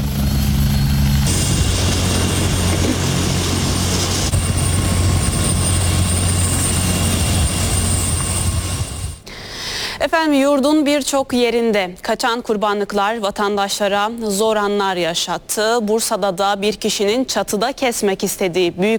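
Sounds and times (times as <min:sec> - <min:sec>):
ambulance helicopter engine and rotor drone transferring a patient in Erzurum: 0:00.0 - 0:09.2
speech: 0:10.0 - 0:18.9.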